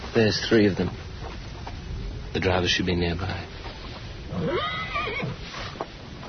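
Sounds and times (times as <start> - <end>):
speech: 0.2 - 1.0, 2.4 - 3.5
horse whinnying: 4.3 - 5.8.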